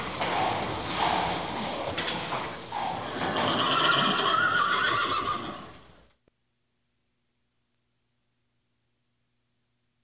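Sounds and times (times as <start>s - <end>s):
horse breathing: 0.0s - 3.8s
horse whinnying: 0.0s - 5.8s.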